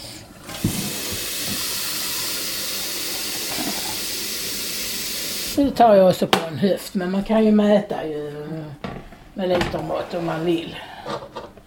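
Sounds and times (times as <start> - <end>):
electric kettle boiling water for mashed potatoes, steam hissing: 0.0 - 5.6
soft bubbling knocks in an electric kettle: 0.5 - 1.8
speech: 5.6 - 8.8, 9.4 - 11.4.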